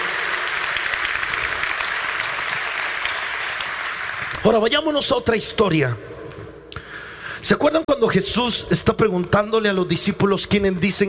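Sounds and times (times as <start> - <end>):
crowd clapping: 0.0 - 4.6
speech: 4.4 - 6.2, 7.4 - 11.0.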